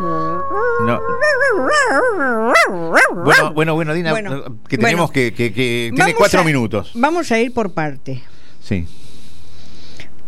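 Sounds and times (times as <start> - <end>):
dog howling whine: 0.0 - 3.6
speech: 2.9 - 9.0.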